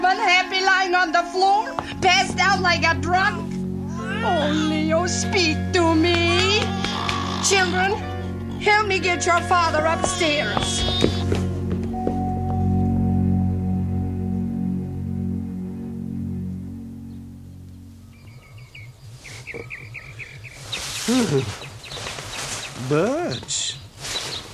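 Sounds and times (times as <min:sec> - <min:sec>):
low steady drone: 0:00.0 - 0:10.6, 0:11.2 - 0:20.4
speech: 0:01.0 - 0:03.6, 0:04.2 - 0:10.9, 0:21.3 - 0:21.6, 0:22.9 - 0:23.1
birds chirping and calling in the morning: 0:06.2 - 0:11.3, 0:17.0 - 0:24.5.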